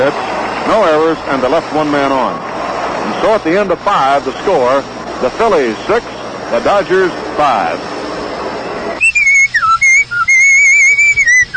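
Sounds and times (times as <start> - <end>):
speech: 0.0 - 7.9
man whistling a bright lilting tune: 9.0 - 11.5.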